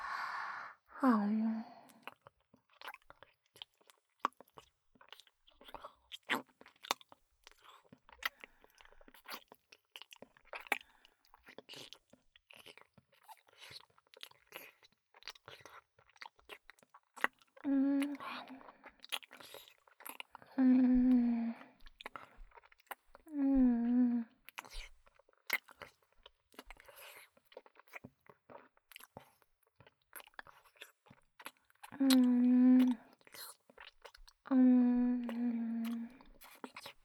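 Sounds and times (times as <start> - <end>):
person sighing: 0.0 - 1.6
person eating and chewing food: 1.9 - 37.0.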